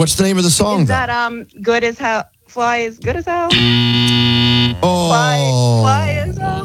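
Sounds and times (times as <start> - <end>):
speech: 0.0 - 6.6
loud flat electronic game show buzzer: 3.5 - 5.0.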